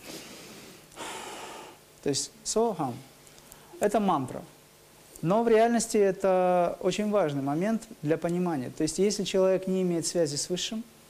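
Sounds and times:
person inhaling and exhaling deliberately into a microphone: 0:00.0 - 0:01.8
speech: 0:02.0 - 0:03.1, 0:03.8 - 0:04.6, 0:05.2 - 0:11.0.

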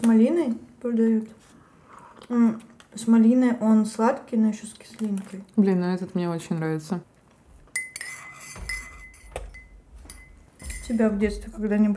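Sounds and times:
speech: 0:00.0 - 0:01.4, 0:02.3 - 0:07.1, 0:10.9 - 0:11.9
spoon clinking against a mug while stirring sugar: 0:07.7 - 0:11.0.

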